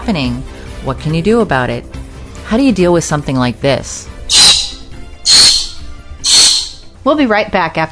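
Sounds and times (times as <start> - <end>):
speech: 0.1 - 4.4, 7.0 - 7.9
bird screeching: 4.3 - 6.9.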